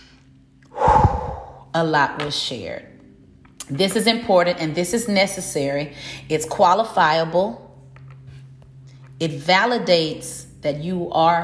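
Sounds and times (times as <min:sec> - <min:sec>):
deep breath drawn in sharply: 0:00.7 - 0:01.7
speech: 0:01.8 - 0:02.9, 0:03.7 - 0:07.6, 0:09.2 - 0:11.4.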